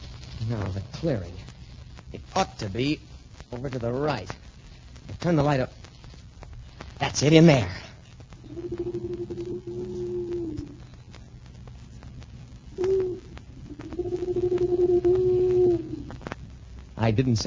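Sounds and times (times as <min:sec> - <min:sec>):
faint rumble: 0:00.0 - 0:17.4
speech: 0:00.5 - 0:01.5, 0:02.1 - 0:04.4, 0:05.2 - 0:05.8, 0:07.0 - 0:07.8, 0:17.0 - 0:17.4
owl hooting low and hollow: 0:08.4 - 0:11.0, 0:12.7 - 0:16.3.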